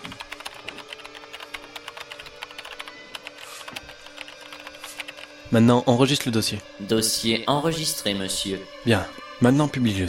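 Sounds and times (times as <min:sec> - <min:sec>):
rapid typing on a computer keyboard: 0:00.0 - 0:05.4
speech: 0:05.5 - 0:10.0.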